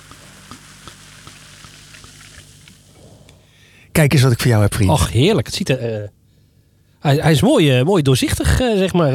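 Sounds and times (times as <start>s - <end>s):
bubbles of freshly poured bubbly fizzing in a glass: 0.0s - 2.8s
speech: 4.0s - 6.2s, 7.0s - 9.1s.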